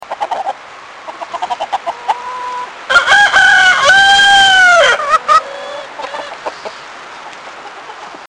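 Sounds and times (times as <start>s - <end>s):
medium rooster crowing: 2.2s - 6.4s.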